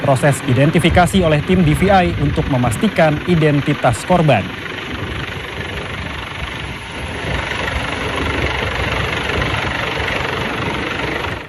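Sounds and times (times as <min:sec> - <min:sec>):
helicopter engine running: 0:00.0 - 0:11.4
speech: 0:00.1 - 0:04.7.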